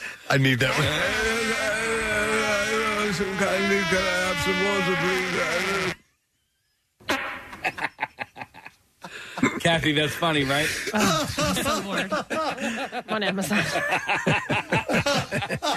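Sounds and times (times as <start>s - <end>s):
speech: 0.3s - 1.8s, 3.1s - 6.0s, 9.6s - 15.7s
long buzzy fart with a wavering pitch: 0.5s - 6.0s, 7.0s - 8.0s
laughter: 7.1s - 15.7s.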